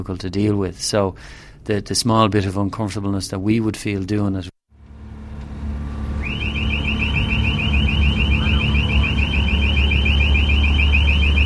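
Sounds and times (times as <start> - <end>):
speech: 0.0 - 4.5
ship's low engine rumble: 4.8 - 11.4
ship's man-overboard alarm: 5.8 - 11.4.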